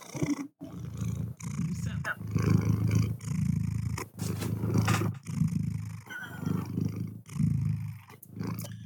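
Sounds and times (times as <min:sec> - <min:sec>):
cat purring loudly: 0:00.0 - 0:08.8.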